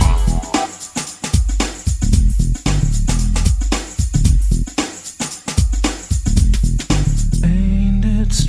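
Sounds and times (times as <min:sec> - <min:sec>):
nineties breakbeat drum loop with kick tuned to G: 0:00.0 - 0:07.4.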